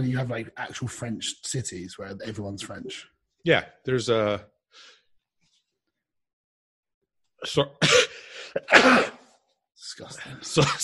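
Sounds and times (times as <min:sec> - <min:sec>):
speech: 0:00.0 - 0:05.0, 0:07.4 - 0:09.2, 0:09.8 - 0:10.8
person sneezing: 0:07.8 - 0:09.4.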